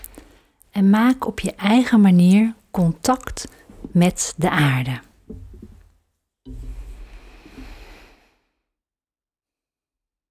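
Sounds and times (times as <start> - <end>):
speech: 0.8 - 5.1
deep breaths in through the nose and out through the mouth: 6.8 - 8.6.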